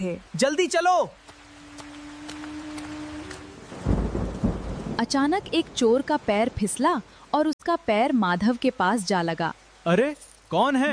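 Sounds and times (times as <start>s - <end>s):
speech: 0.0s - 1.3s, 5.0s - 10.9s
rain falling: 0.0s - 10.9s
deep loud thunder rumbling: 1.4s - 6.8s.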